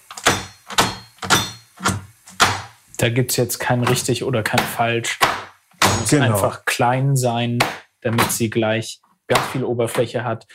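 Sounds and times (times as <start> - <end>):
knife chopping chocolate on a cutting board: 0.2 - 2.7, 7.6 - 8.4, 9.3 - 10.0
speech: 3.0 - 5.4, 6.0 - 10.5.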